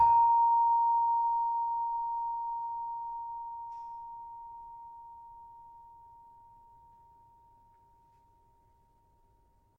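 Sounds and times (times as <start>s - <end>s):
tuned gamelan saron playing A sharp: 0.0s - 9.4s.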